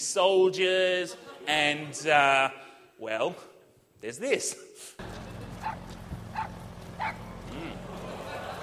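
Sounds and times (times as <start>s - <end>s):
speech: 0.0s - 5.4s, 7.0s - 7.8s
laughter: 1.0s - 2.2s, 7.4s - 8.6s
steady low hum: 5.0s - 8.6s
puppy yapping in a video game: 5.6s - 5.8s, 6.4s - 7.2s.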